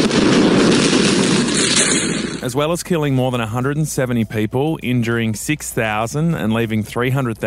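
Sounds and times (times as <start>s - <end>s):
explosion roar in Beirut: 0.0s - 2.7s
speech: 2.4s - 7.4s.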